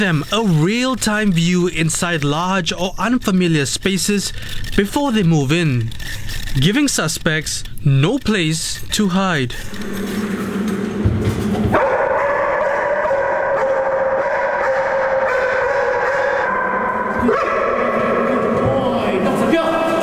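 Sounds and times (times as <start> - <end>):
speech: 0.0 - 10.7
dense steady hum: 0.0 - 20.0
police dog barking at hidden person: 11.7 - 18.7.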